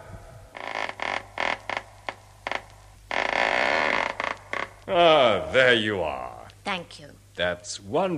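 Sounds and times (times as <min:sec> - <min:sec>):
door creaking open: 0:00.5 - 0:04.9
speech: 0:04.9 - 0:08.1.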